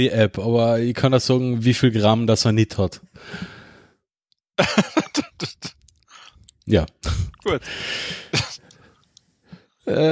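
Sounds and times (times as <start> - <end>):
speech: 0.0 - 3.5, 4.6 - 5.7, 6.7 - 8.4, 9.9 - 10.1
laughter: 4.6 - 5.8
loud harsh cough: 4.6 - 5.8, 8.3 - 8.6
faint soft breath or click: 8.6 - 9.7.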